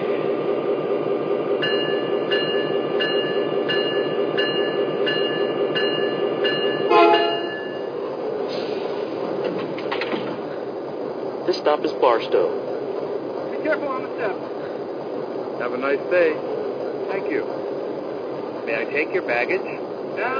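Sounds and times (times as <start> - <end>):
passenger train arriving at station platform: 0.0 - 20.3
sustained horn-like tone: 6.9 - 7.6
speech: 11.7 - 12.6, 13.7 - 14.5, 15.7 - 16.5, 17.3 - 17.7, 18.7 - 20.3.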